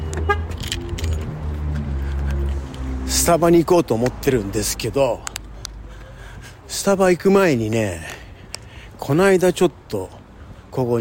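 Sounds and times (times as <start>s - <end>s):
metallic keys jingling while locking a door: 0.5s - 2.8s
speech: 3.2s - 5.3s, 6.7s - 8.2s, 9.0s - 10.9s.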